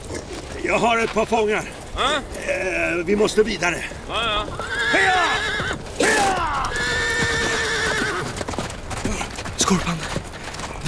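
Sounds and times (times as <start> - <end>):
ridden horses' hooves clip-clopping: 0.0 - 10.8
speech: 0.7 - 6.8, 9.7 - 10.2
horse whinnying: 4.1 - 8.5.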